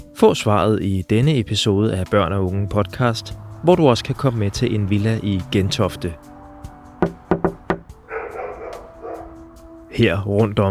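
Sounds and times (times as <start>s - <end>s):
speech: 0.2s - 6.3s, 10.0s - 10.6s
dog barking indoors: 8.0s - 9.5s.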